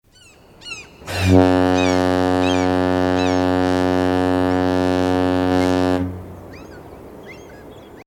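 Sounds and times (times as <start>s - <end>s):
ship horn: 1.0s - 7.1s.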